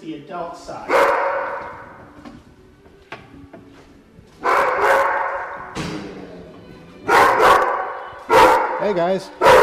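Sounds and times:
speech: 0.0s - 1.5s, 8.8s - 9.5s
several excited dogs barking and yipping: 0.8s - 2.0s, 4.4s - 5.8s, 7.0s - 9.6s.

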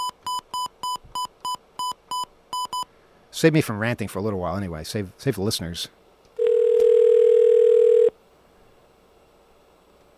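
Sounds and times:
short electronic telephone dialing beeps: 0.0s - 2.8s, 6.4s - 8.1s
speech: 3.3s - 6.0s.

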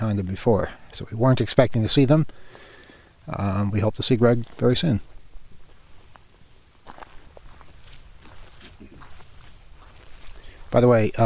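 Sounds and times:
speech: 0.0s - 5.1s, 10.7s - 11.2s
footsteps of two people walking down a road: 3.9s - 11.2s.

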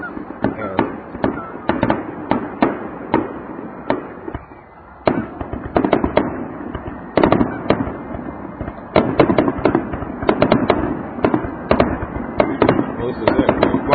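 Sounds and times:
firework bangs and crackles outdoors: 0.0s - 13.9s.

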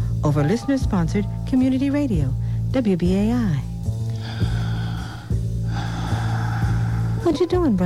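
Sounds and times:
speech: 0.2s - 3.7s, 7.2s - 7.8s
heavy breathing with sharp gasping intakes: 4.0s - 7.4s.

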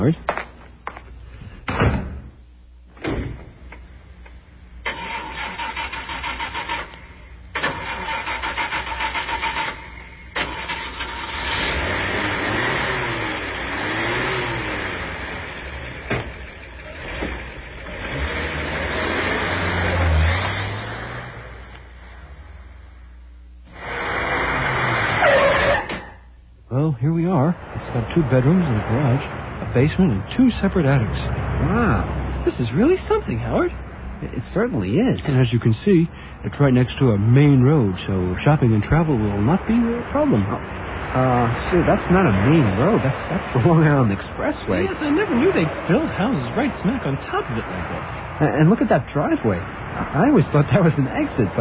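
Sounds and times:
speech: 0.0s - 0.3s, 28.0s - 51.5s
car door thumps: 1.6s - 2.4s, 3.0s - 3.6s
car engine cranking and starting: 2.9s - 26.3s, 27.0s - 51.5s.

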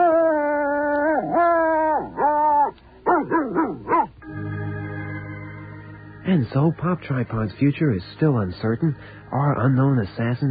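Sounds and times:
dog barking and yowling: 0.0s - 4.2s
speech: 6.3s - 10.4s.

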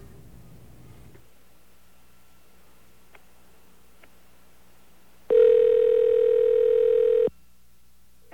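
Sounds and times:
phone dial tone: 5.3s - 7.3s.

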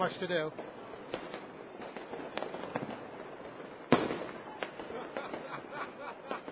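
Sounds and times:
speech: 0.0s - 0.8s
faint hiss: 0.0s - 6.5s
fireworks crackling and popping: 0.0s - 6.5s
loud firework boom: 3.9s - 5.5s
laughter: 4.8s - 6.5s.

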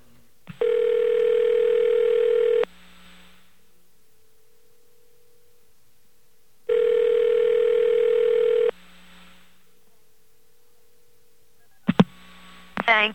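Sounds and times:
telephone ringing on a call to a payphone line: 0.6s - 2.6s, 6.7s - 8.7s.

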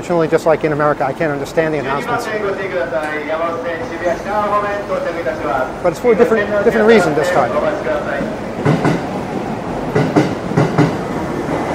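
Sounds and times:
speech: 0.0s - 8.8s
subway train rumbling in arriving at a station: 0.0s - 11.7s
subway train wheels clacking over rail joints: 2.3s - 11.7s.

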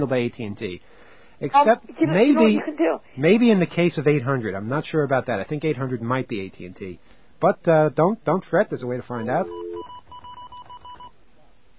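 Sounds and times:
low hiss: 0.0s - 9.4s
speech: 0.0s - 9.7s
touch-tone beeps of a telephone being dialed: 9.2s - 11.1s.

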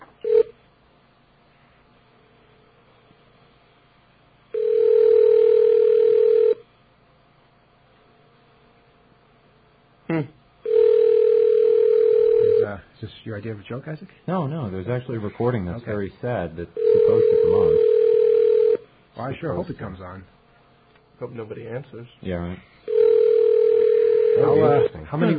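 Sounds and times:
long steady telephone tone: 0.0s - 0.6s, 4.5s - 6.7s, 10.6s - 12.8s, 16.8s - 18.9s, 22.8s - 24.9s
speech: 13.4s - 17.9s, 19.2s - 20.4s, 21.2s - 22.7s, 24.4s - 25.3s.

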